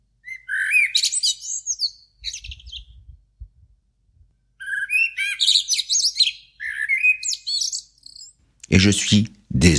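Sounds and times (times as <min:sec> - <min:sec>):
blackbirds singing in a city before dawn: 0:00.2 - 0:03.2, 0:04.5 - 0:09.3
speech: 0:08.8 - 0:09.7.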